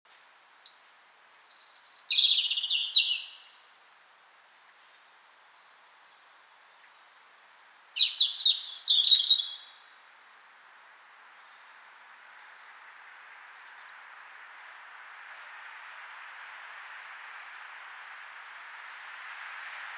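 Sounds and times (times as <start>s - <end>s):
European robin Erithacus rubecula singing whistles and trills: 0.6s - 3.6s, 7.6s - 9.9s.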